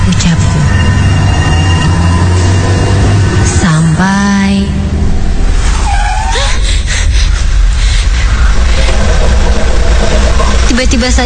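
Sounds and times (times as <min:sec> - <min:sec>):
car tire squeal from sudden braking: 0:00.0 - 0:03.4, 0:05.6 - 0:06.6
steady car engine rumble: 0:00.0 - 0:11.2
speech: 0:10.9 - 0:11.2.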